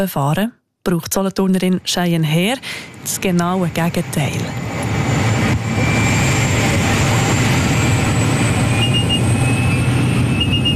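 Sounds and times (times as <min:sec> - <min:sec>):
speech: 0:00.0 - 0:04.8
small airplane engine drone in the cabin: 0:01.8 - 0:10.7.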